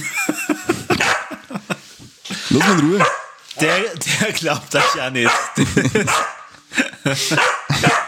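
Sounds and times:
laughter: 0:00.0 - 0:08.0
dog barking and yipping: 0:01.0 - 0:01.4, 0:02.5 - 0:03.9, 0:04.8 - 0:06.5, 0:07.3 - 0:08.0
speech: 0:02.5 - 0:08.0.

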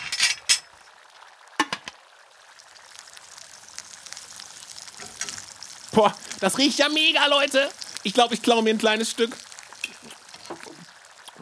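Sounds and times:
waffle batter sizzling in a waffle iron: 0:02.4 - 0:11.4
speech: 0:06.0 - 0:09.5.

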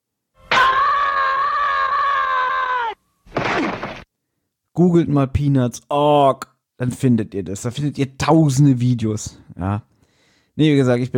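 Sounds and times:
looped cartoon character's frustrated scream: 0:00.4 - 0:03.0
speech: 0:04.8 - 0:09.9, 0:10.6 - 0:11.1.

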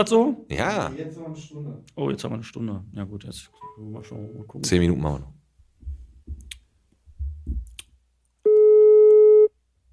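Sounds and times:
speech: 0:00.0 - 0:05.4
telephone busy tone after a call is rejected: 0:08.5 - 0:09.5.

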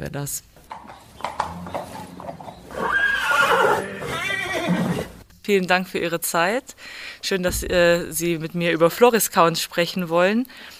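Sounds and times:
speech: 0:00.0 - 0:01.7, 0:05.5 - 0:10.7
horse hooves clip-clopping: 0:00.6 - 0:03.0
horse whinnying: 0:01.2 - 0:05.2.

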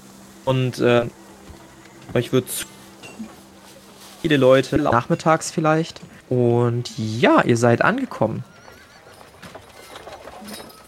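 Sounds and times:
speech: 0:00.5 - 0:01.2, 0:02.1 - 0:03.3, 0:04.2 - 0:08.5
horse hooves clopping arriving at a castle with a drawbridge: 0:08.0 - 0:10.8.

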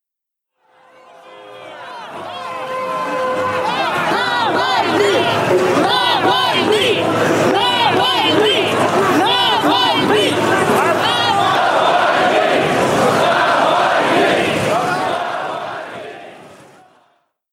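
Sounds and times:
excited babble of crowd: 0:00.6 - 0:17.1
large crowd of supporters chanting in unison at an airport: 0:00.6 - 0:17.3
people shouting: 0:00.7 - 0:17.0.

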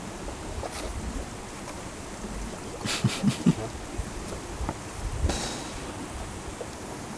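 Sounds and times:
water bubbling and gurgling: 0:00.1 - 0:07.1
laughter: 0:02.8 - 0:03.7.

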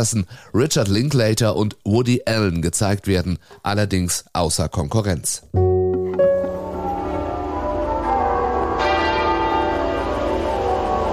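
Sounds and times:
speech: 0:00.0 - 0:05.6
church bells ringing in a dense overlapping peal: 0:05.6 - 0:11.1.

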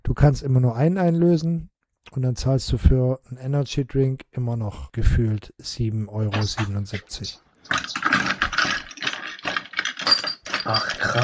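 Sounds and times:
speech: 0:00.1 - 0:08.0, 0:10.6 - 0:11.2
rummaging and rustling through a box: 0:07.6 - 0:11.2.

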